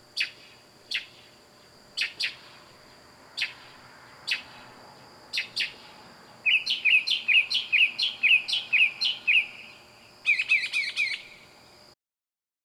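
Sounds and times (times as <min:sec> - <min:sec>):
faint steady high hum: 0:00.0 - 0:12.0
loud bird calling at night: 0:00.2 - 0:02.6, 0:03.4 - 0:04.7, 0:05.3 - 0:11.6.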